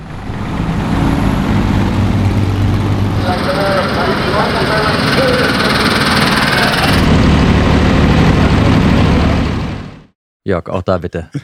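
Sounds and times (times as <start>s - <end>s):
old tractor engines chugging in a tractor race: 0.0s - 7.1s
brighter mechanical whine: 0.0s - 10.1s
crowd murmuring: 3.2s - 7.0s
speech: 10.5s - 11.4s.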